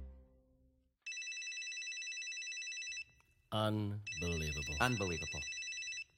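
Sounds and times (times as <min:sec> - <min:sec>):
cell phone ringing with a bright, rapidly trilling electronic tone: 0:01.1 - 0:03.2, 0:04.0 - 0:06.1
speech: 0:03.5 - 0:05.6.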